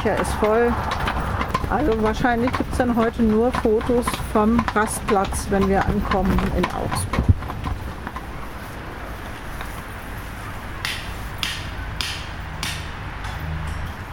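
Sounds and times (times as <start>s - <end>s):
speech: 0.0s - 1.0s, 1.7s - 7.3s
hammer knocking on fence posts while setting up horse paddock fences on a meadow: 0.0s - 8.3s, 10.8s - 13.4s
steady broadband noise: 0.0s - 14.1s.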